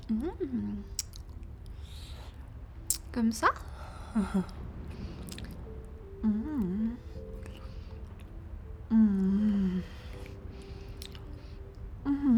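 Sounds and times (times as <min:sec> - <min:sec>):
person humming short vocal murmurs: 0:00.0 - 0:00.9, 0:06.1 - 0:08.0, 0:08.9 - 0:10.4, 0:12.0 - 0:12.3
speech: 0:00.1 - 0:01.0, 0:03.1 - 0:04.7, 0:06.2 - 0:07.1, 0:08.9 - 0:10.0
licking and sucking on food: 0:00.8 - 0:03.1, 0:04.4 - 0:05.7, 0:07.2 - 0:08.4, 0:09.5 - 0:11.8.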